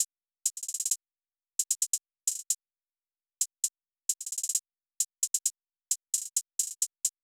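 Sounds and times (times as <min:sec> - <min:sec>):
hi-hat drum loop at 132 BPM: 0:00.0 - 0:01.0, 0:01.6 - 0:02.6, 0:03.4 - 0:07.2.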